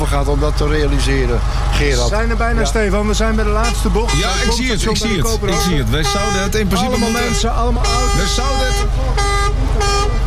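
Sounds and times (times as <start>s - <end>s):
steady road rumble: 0.0s - 10.2s
speech: 0.1s - 10.0s
car horn honking: 3.4s - 10.2s.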